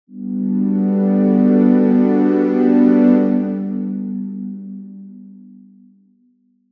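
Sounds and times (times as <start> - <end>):
trance pad on a jup8: 0.1 - 5.9.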